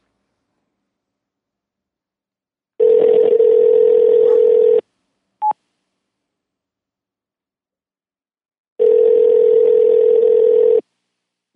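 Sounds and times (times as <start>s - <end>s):
phone line ringback tone: 2.8s - 4.8s, 8.8s - 10.8s.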